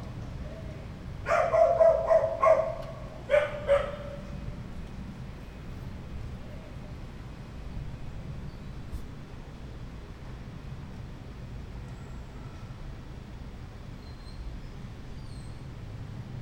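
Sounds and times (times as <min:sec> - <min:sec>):
dog barking: 0:01.2 - 0:04.3.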